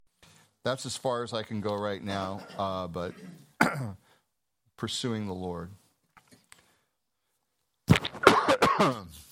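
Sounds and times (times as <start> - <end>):
speech: 0.6 - 4.0, 4.8 - 5.8, 8.8 - 9.3
raspy cough: 2.4 - 4.0, 8.2 - 9.1.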